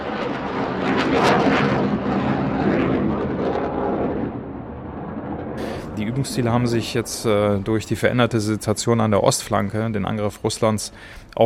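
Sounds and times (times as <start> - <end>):
F-35 stealth fighter jet flying past: 0.0 - 9.0
speech: 6.1 - 11.4.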